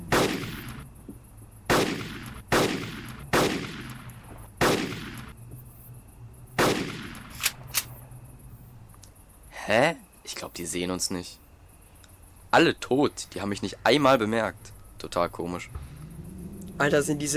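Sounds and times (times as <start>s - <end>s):
sniper rifle shots in a video game: 0.0s - 0.8s, 1.7s - 5.3s, 6.6s - 8.0s
speech: 9.7s - 11.4s, 12.5s - 15.9s, 16.8s - 17.3s.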